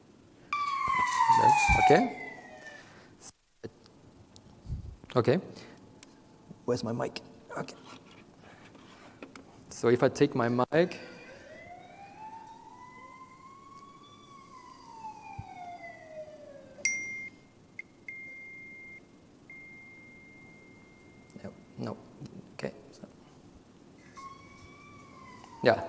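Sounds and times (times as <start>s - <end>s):
car siren wailing from a small speaker: 0.5s - 3.0s, 11.2s - 16.8s, 24.1s - 25.8s
speech: 1.7s - 2.2s, 5.2s - 5.7s, 6.7s - 7.9s, 9.8s - 11.1s, 25.6s - 25.8s.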